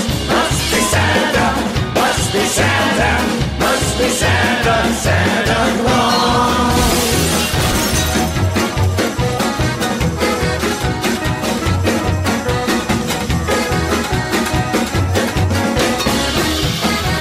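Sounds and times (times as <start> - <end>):
loud dense rhythmic party music: 0.0 - 17.1
glass shattering and crashing: 6.6 - 8.5.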